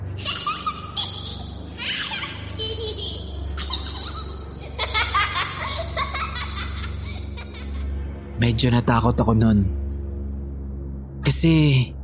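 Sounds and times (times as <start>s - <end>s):
steady low hum: 0.0s - 12.0s
young child laughing and babbling while playing on a path: 0.1s - 7.9s
speech: 8.5s - 9.8s, 11.4s - 12.0s.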